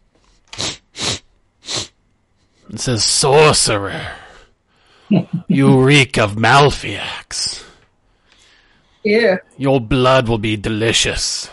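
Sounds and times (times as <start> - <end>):
voice imitating a creature sniffing the air: 0.5 - 2.0
speech: 2.7 - 4.2, 5.1 - 7.5, 9.0 - 11.5.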